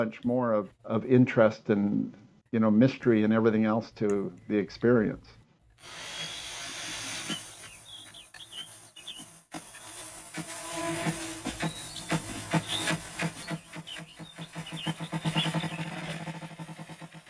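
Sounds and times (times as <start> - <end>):
speech: 0.0 - 6.3
male ruffed grouse drumming on a log, beating the air with its wings: 7.2 - 17.2.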